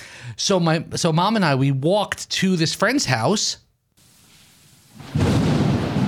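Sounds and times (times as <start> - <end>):
speech: 0.3 - 3.6
heavy rain in a thunderstorm sound effect: 4.0 - 6.0
deep thunder rumbling in a thunderstorm sound effect: 4.9 - 6.0.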